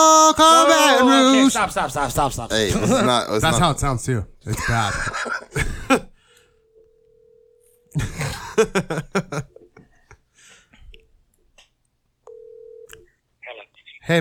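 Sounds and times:
speech: 0.3 - 5.7, 7.9 - 9.6, 14.1 - 14.2
laughter: 1.2 - 3.6, 4.5 - 6.1, 8.0 - 9.8
steady low ringback tone of an outgoing telephone call: 6.6 - 7.9, 12.3 - 12.9.

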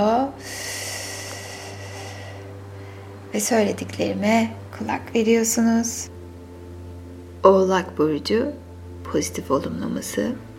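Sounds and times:
steady low electrical hum: 0.0 - 10.5
long deep breath of a person sitting comfortably: 0.4 - 3.3
speech: 3.3 - 6.1, 7.4 - 10.5.

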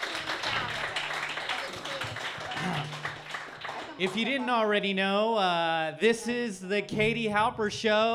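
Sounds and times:
audience applauding: 0.0 - 4.5
people cheering: 0.0 - 4.5
speech: 4.0 - 8.1.

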